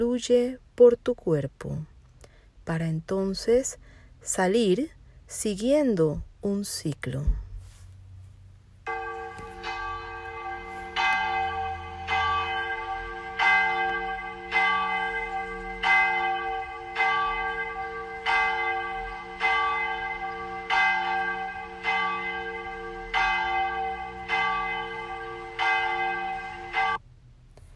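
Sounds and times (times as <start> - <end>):
speech: 0.0 - 1.9, 2.7 - 7.4
church bell ringing: 8.8 - 27.0.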